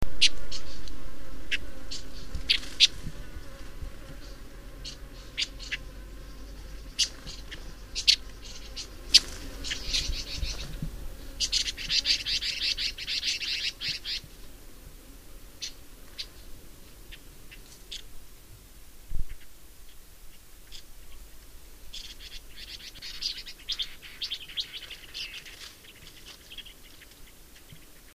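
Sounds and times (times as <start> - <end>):
Red Billed Leiothrix: 0.2 - 0.9, 1.5 - 14.3, 19.2 - 28.1.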